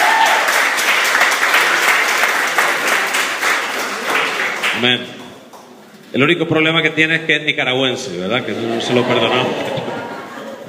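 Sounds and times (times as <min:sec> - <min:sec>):
church congregation applauding in welcome: 0:00.0 - 0:05.8
speech: 0:04.8 - 0:05.2, 0:06.2 - 0:09.9
laughter: 0:08.4 - 0:10.6.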